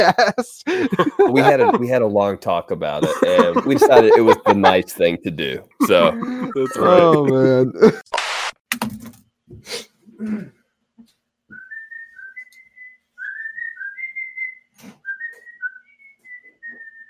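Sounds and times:
laughter: 0.0s - 2.1s, 2.9s - 5.2s, 5.8s - 8.1s
speech: 0.0s - 10.6s
person whistling a monster movie theme tune: 11.5s - 17.0s.

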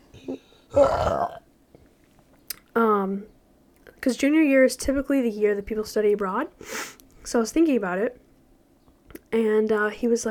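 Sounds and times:
deep throaty loud burp: 0.2s - 1.5s
speech: 0.8s - 1.4s, 3.1s - 3.4s, 4.0s - 8.2s, 9.3s - 10.2s.

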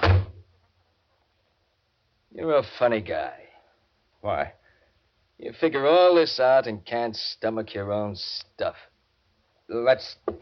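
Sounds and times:
door swinging shut with a heavy thud: 0.0s - 0.4s
speech: 2.4s - 3.4s, 4.2s - 4.6s, 5.4s - 8.9s, 9.7s - 10.3s.

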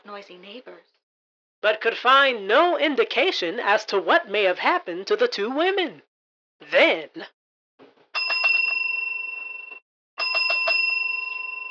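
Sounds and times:
speech: 0.1s - 1.0s, 1.6s - 7.4s
telephone bell ringing inside an apartment: 8.2s - 11.7s.

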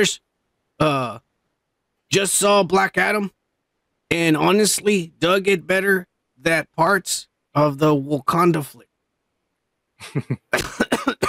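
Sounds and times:
speech: 0.0s - 1.2s, 2.1s - 3.4s, 4.1s - 8.9s, 10.0s - 11.2s
person coughing after trying to speak while inhaling: 10.0s - 11.2s.

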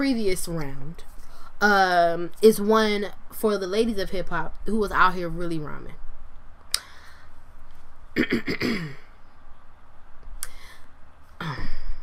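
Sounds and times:
speech: 0.0s - 6.0s, 8.2s - 9.0s
sharp breaths: 6.7s - 7.4s, 10.4s - 10.9s
person clearing throat: 8.2s - 9.1s, 11.4s - 12.0s.

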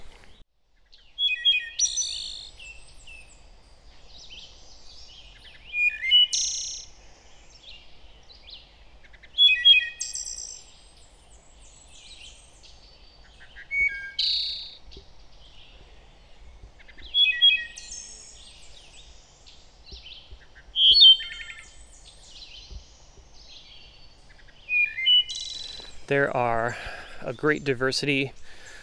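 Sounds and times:
wood thrush singing: 0.0s - 28.8s
speech: 26.1s - 28.4s.

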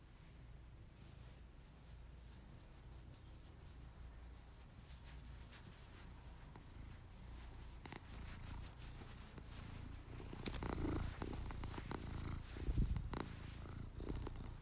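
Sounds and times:
faint rustles: 0.0s - 14.6s
male cat purring loudly: 6.6s - 14.6s.

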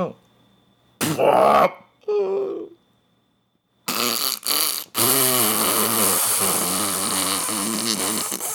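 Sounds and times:
speech: 1.2s - 2.7s
voice imitating farts: 3.9s - 8.5s.

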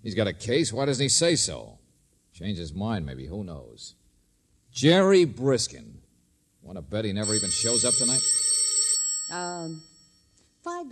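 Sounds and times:
speech: 0.0s - 1.8s, 2.4s - 4.0s, 4.7s - 6.0s, 6.6s - 8.5s, 9.3s - 9.9s, 10.6s - 10.9s
telephone ringing with a bright high electronic tone: 7.2s - 10.2s.

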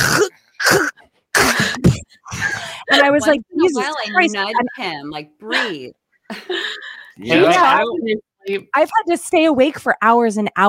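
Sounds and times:
person imitating a man's snoring with throaty snorting: 0.0s - 0.9s
speech: 3.1s - 10.6s.

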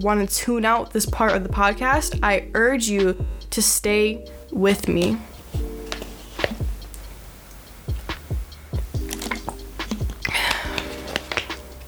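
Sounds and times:
speech: 0.0s - 5.3s
sipping and swallowing water from a water bottle: 4.3s - 11.8s.

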